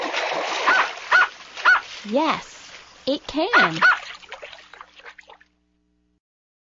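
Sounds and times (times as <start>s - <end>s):
dog barking: 0.6s - 1.8s, 3.5s - 4.1s
speech: 2.0s - 4.0s.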